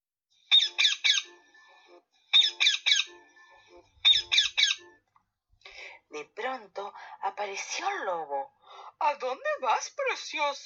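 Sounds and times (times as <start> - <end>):
small birds singing in a forest: 0.5 - 1.5, 2.3 - 3.3, 4.0 - 5.0
speech: 6.1 - 10.6.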